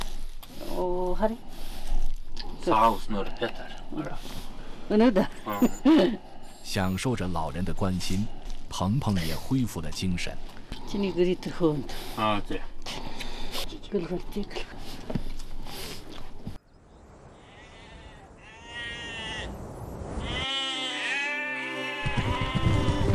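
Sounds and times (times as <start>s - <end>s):
speech: 1.2s - 1.7s, 2.6s - 13.1s, 13.8s - 15.1s
flock of adult sheep bleating while driven to pasture: 17.4s - 19.5s, 20.2s - 23.1s.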